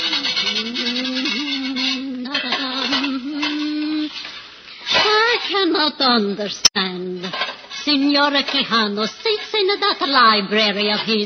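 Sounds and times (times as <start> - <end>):
low sustained hum: 0.0 - 4.2
pots being scrubbed in a kitchen: 0.0 - 6.1, 7.1 - 11.2
speech: 5.9 - 11.2.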